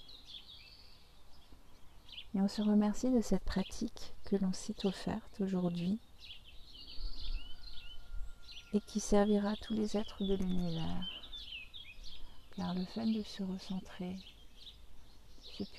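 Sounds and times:
birds singing and chirping outdoors: 0:00.0 - 0:15.7
speech: 0:02.3 - 0:06.4, 0:08.7 - 0:11.2, 0:12.6 - 0:14.4, 0:15.5 - 0:15.7.

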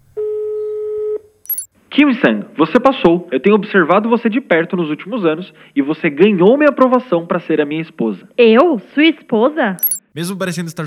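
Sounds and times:
telephone ringback tone: 0:00.2 - 0:01.7, 0:09.8 - 0:10.0
high-pitched chirp: 0:01.5 - 0:01.7, 0:09.8 - 0:10.1
speech: 0:02.0 - 0:10.8.

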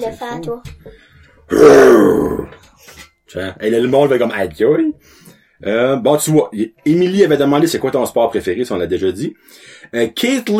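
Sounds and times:
speech: 0:00.0 - 0:10.5
person imitating a lion's roar: 0:01.5 - 0:02.5.

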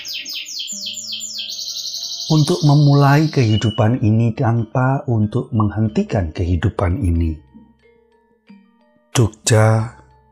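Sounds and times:
birds chirping: 0:00.0 - 0:06.3
speech: 0:02.3 - 0:07.5, 0:09.2 - 0:10.0.

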